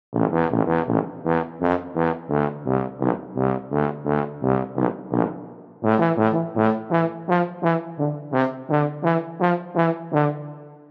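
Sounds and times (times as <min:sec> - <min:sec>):
tuba staccato: 0:00.1 - 0:10.8.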